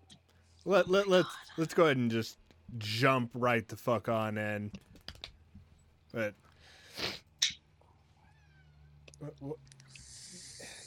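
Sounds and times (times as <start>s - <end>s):
speech: 0.6s - 4.9s, 6.1s - 6.4s, 9.2s - 9.7s
male ragdoll cat meowing: 8.2s - 9.0s
breathy hissy bursts from a ragdoll cat: 9.9s - 10.8s.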